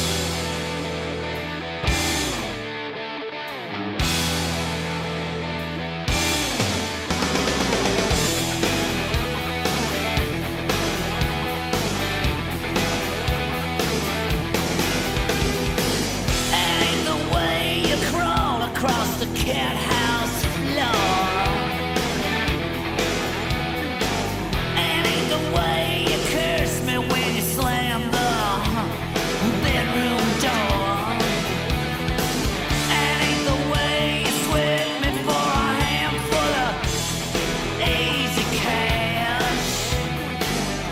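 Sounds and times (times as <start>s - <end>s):
loud dense rock song with full band: 0.0s - 40.9s.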